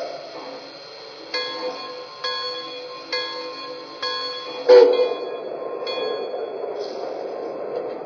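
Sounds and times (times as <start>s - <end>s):
train rumbling and hissing as it pulls away from a station: 0.0s - 8.0s
chime-like tones at a train station: 1.4s - 6.6s.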